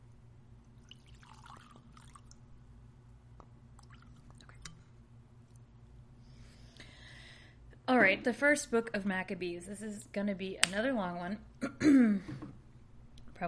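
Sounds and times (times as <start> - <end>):
steady low hum: 0.0 - 13.4
bourbon being poured into a glass: 0.8 - 2.4, 3.8 - 4.8
speech: 8.0 - 12.5.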